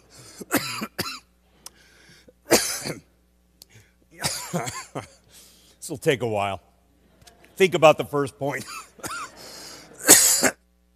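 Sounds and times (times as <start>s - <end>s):
person coughing after a drink: 0.2s - 1.3s, 2.5s - 3.1s, 4.2s - 5.2s, 8.6s - 10.6s
speech: 4.5s - 5.2s, 5.9s - 6.7s, 7.6s - 8.8s.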